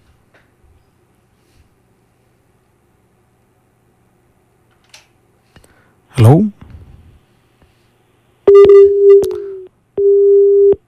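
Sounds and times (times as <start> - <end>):
speech: 6.2 - 6.6
telephone line tone after a caller's line is cut off: 8.5 - 10.8.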